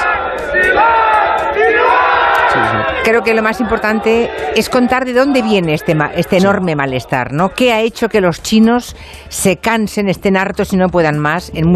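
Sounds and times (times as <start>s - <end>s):
large crowd of protesters chanting and shouting against COVID lockdown restrictions in China: 0.0s - 8.8s
speech: 3.2s - 11.7s.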